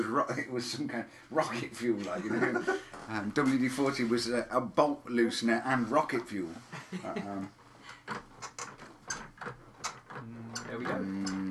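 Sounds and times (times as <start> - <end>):
speech: 0.0 - 8.3
laughter: 2.1 - 2.9, 6.7 - 7.5
rocking chair creaking as someone leans back and forward: 7.8 - 11.4.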